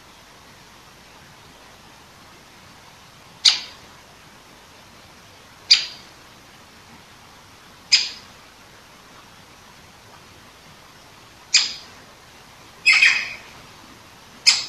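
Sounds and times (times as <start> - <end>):
great spotted woodpecker Dendrocopos major kick calls: 3.4 - 3.8, 5.7 - 6.0, 7.9 - 8.2, 11.5 - 11.9, 12.8 - 13.5, 14.4 - 14.6.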